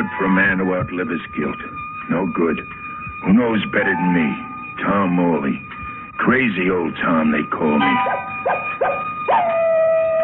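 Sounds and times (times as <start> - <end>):
speech: 0.2 - 9.1
coyote yipping and howling: 7.8 - 10.2.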